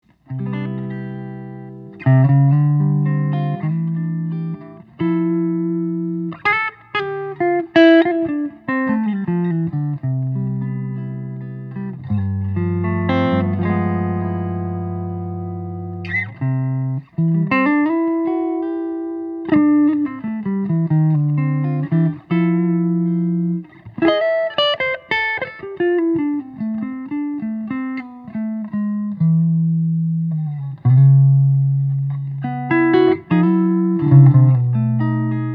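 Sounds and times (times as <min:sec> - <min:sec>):
all-maple electric archtop guitar: 0:00.0 - 0:35.5.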